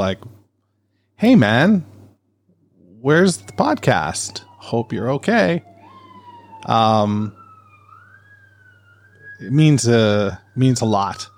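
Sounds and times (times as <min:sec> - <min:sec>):
speech: 0:00.0 - 0:00.4, 0:01.2 - 0:01.9, 0:03.0 - 0:05.7, 0:06.6 - 0:07.4, 0:09.4 - 0:11.3
police siren wailing: 0:02.5 - 0:11.3.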